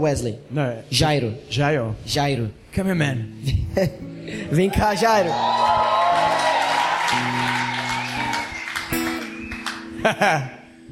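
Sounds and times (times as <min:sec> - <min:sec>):
speech: 0:00.0 - 0:06.0, 0:10.0 - 0:10.6
lively crowd cheering and shouting: 0:04.6 - 0:09.4
sharp rising whoops: 0:05.2 - 0:09.7
laughter: 0:09.7 - 0:10.7.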